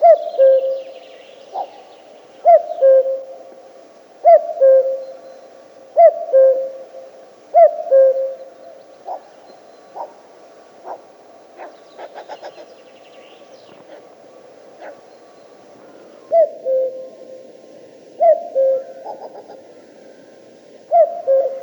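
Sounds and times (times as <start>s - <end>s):
common cuckoo calling a two-note cu-coo: 0.0s - 3.5s, 4.2s - 10.2s, 11.6s - 21.6s.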